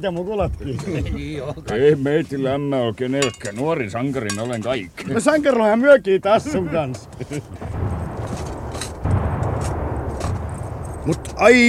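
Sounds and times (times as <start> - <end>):
speech: 0.0 - 7.8, 11.1 - 11.6
laughter: 6.3 - 7.8
artillery fire: 7.0 - 11.6.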